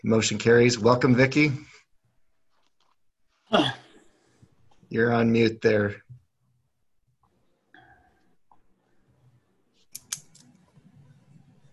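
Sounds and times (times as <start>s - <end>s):
speech: 0.0s - 1.8s, 3.5s - 3.8s, 4.9s - 6.1s
computer mouse clicks: 9.8s - 10.9s.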